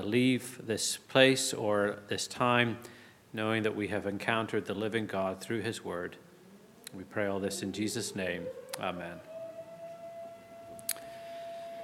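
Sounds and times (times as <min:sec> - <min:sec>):
speech: 0:00.0 - 0:06.2, 0:06.9 - 0:09.3
faint fire siren holding a steady tone: 0:07.4 - 0:11.8.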